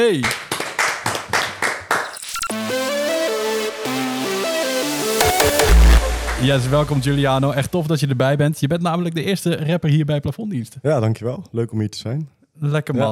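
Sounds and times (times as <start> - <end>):
speech: 0.0 - 0.4, 6.4 - 13.1
hands clapping: 0.0 - 3.3, 5.2 - 7.6
bright musical jingle: 2.2 - 7.9.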